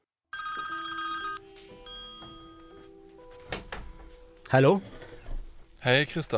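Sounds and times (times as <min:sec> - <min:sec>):
telephone bell ringing loudly in a newsroom: 0:00.4 - 0:03.0
speech: 0:04.5 - 0:05.0, 0:05.8 - 0:06.3.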